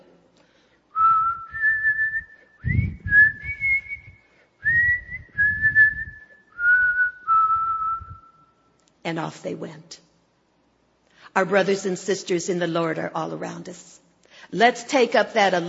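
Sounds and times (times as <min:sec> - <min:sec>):
person imitating a train guard's whistled signal: 0:01.0 - 0:08.7
speech: 0:09.1 - 0:10.1, 0:11.4 - 0:15.6.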